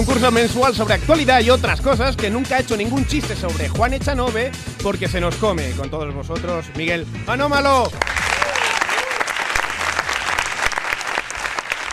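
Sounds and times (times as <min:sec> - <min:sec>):
speech: 0:00.0 - 0:08.2
dense loud audience applause: 0:07.9 - 0:11.9.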